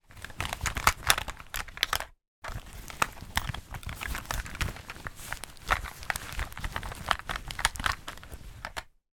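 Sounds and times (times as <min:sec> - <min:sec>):
hand rummaging inside fabric makeup pouch with items moving: 0:00.0 - 0:08.8.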